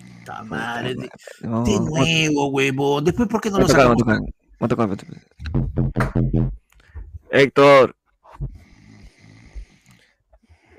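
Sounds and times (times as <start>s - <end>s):
person snoring asleep, muffled through a bathroom door: 0.0s - 2.0s, 8.4s - 10.7s
speech: 0.2s - 6.6s, 7.3s - 8.5s
soft breath: 8.3s - 10.7s.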